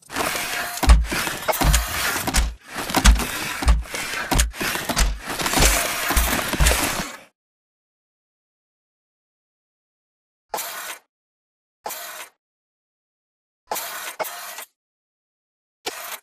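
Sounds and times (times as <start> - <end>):
hatch opening: 0.1 - 7.1
footsteps walking to a hatch: 0.8 - 7.1.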